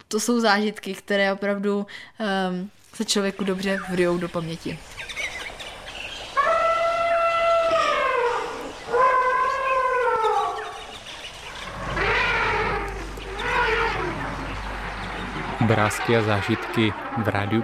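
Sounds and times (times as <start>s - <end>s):
speech: 0.1s - 5.1s, 15.7s - 17.6s
low rumbling background: 3.3s - 17.6s
elephants trumpeting at waterhole: 6.3s - 17.6s
elephants snorting at waterhole: 7.6s - 17.6s.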